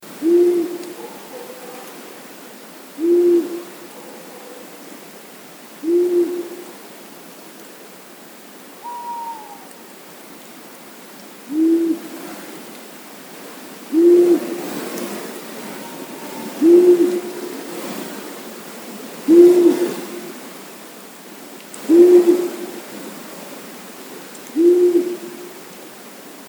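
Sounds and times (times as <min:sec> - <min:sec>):
male tawny owl: 0:00.2 - 0:01.9, 0:03.0 - 0:04.7, 0:05.8 - 0:06.7, 0:08.8 - 0:09.8, 0:11.5 - 0:12.1, 0:13.9 - 0:14.7, 0:15.4 - 0:17.7, 0:19.3 - 0:20.3, 0:21.8 - 0:22.8, 0:24.6 - 0:25.5.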